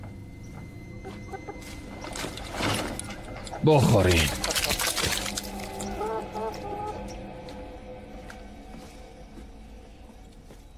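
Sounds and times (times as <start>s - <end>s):
chickens clucking: 1.0s - 2.4s, 4.3s - 7.3s
speech: 3.6s - 4.5s.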